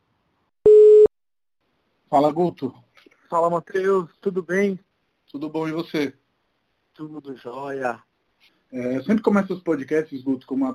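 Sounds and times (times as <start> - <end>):
telephone ringing tone as an outgoing call is placed: 0.7 - 1.1
speech: 2.1 - 6.2, 7.0 - 8.1, 8.7 - 10.7.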